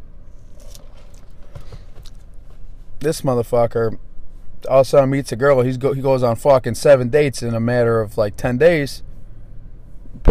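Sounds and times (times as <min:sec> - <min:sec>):
sipping coffee from a cup: 0:00.4 - 0:02.2
speech: 0:03.0 - 0:04.0, 0:04.7 - 0:09.1.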